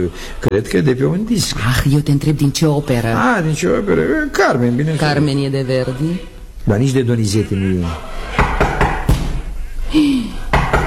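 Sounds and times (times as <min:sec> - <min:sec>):
speech: 0:00.0 - 0:08.4, 0:09.9 - 0:10.4
knocking on a door: 0:08.4 - 0:09.5, 0:10.5 - 0:10.8.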